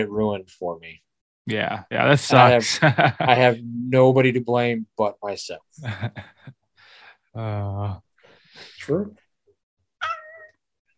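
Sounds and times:
speech: 0:00.0 - 0:06.6, 0:07.4 - 0:09.2
laughter: 0:01.5 - 0:06.5, 0:07.4 - 0:08.0
female cat meowing: 0:10.0 - 0:10.5.

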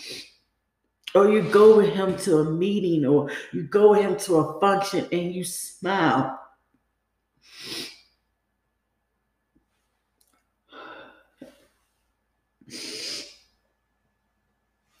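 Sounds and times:
speech: 0:01.2 - 0:06.4
person sniffling while crying: 0:07.4 - 0:08.1, 0:12.6 - 0:13.5.

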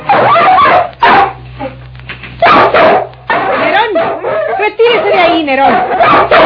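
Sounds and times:
dog barking and yipping: 0:00.1 - 0:01.4, 0:02.4 - 0:06.4
people's voices: 0:03.4 - 0:05.8.

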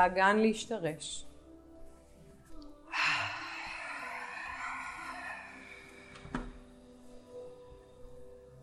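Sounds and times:
speech: 0:00.0 - 0:01.3
deep yoga breathing, nose inhale, throat exhale: 0:02.8 - 0:07.0.

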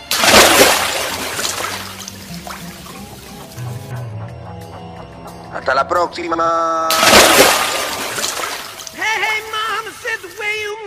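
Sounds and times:
loud broad splash into water: 0:00.0 - 0:03.6, 0:06.9 - 0:10.7
speech: 0:05.6 - 0:07.7.

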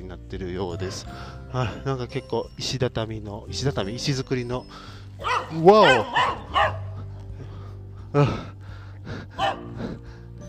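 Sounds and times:
speech: 0:00.1 - 0:06.8, 0:08.1 - 0:08.6
unleashed dog barking loudly: 0:05.2 - 0:07.0, 0:09.4 - 0:09.8.

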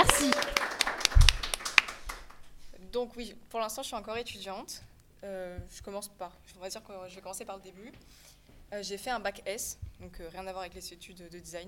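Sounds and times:
small group clapping hands: 0:00.0 - 0:02.5
speech: 0:03.0 - 0:11.6.

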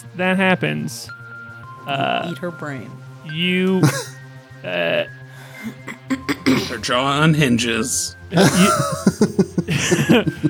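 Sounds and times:
speech: 0:00.2 - 0:01.2, 0:01.8 - 0:10.4
person clearing throat and coughing: 0:03.8 - 0:04.2, 0:05.6 - 0:06.9, 0:08.4 - 0:10.4
laughter: 0:03.8 - 0:05.0, 0:05.6 - 0:10.4.

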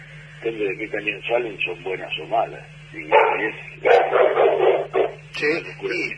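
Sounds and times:
low steady hum: 0:00.0 - 0:06.1
speech: 0:00.4 - 0:04.4, 0:05.4 - 0:06.1
dog barking: 0:03.1 - 0:05.3.

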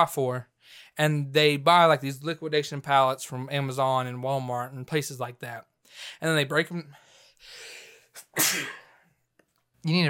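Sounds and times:
speech: 0:00.0 - 0:07.8, 0:08.4 - 0:08.8, 0:09.8 - 0:10.0
person sneezing: 0:08.1 - 0:09.0.

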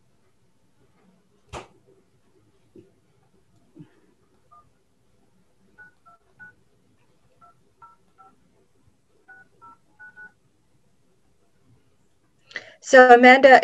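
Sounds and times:
faint low hum: 0:00.0 - 0:13.6
telephone keypad tones dialing in to a meeting's phone audio: 0:05.8 - 0:06.6, 0:07.4 - 0:08.4, 0:09.3 - 0:10.4
speech: 0:12.8 - 0:13.6.

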